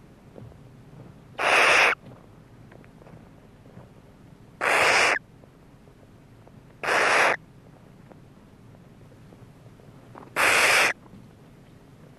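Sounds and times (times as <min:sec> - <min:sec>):
barn owl uttering drawn-out breathy screeches: 0:01.4 - 0:02.0, 0:04.6 - 0:05.2, 0:06.8 - 0:07.4, 0:10.4 - 0:11.0.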